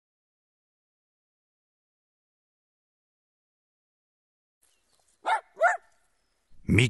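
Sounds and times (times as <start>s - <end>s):
dog barking in a park in Berlin: 5.2s - 5.9s
speech: 6.7s - 6.8s.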